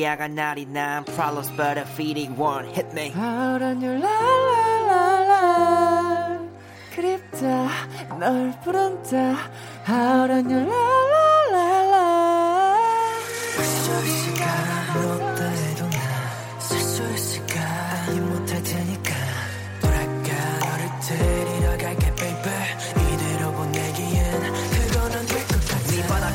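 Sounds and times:
speech: 0.0s - 6.3s, 7.4s - 11.1s
K-pop song playing: 0.0s - 26.3s
steady sustained synth chords: 1.0s - 26.3s
thick bass line: 13.6s - 26.3s.

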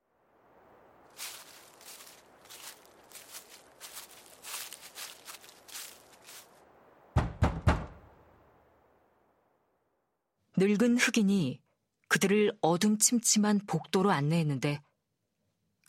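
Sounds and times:
soft uneven shuffling footsteps: 1.1s - 6.6s
sharp raps on a solid front door: 7.2s - 8.0s
speech: 10.6s - 14.9s.

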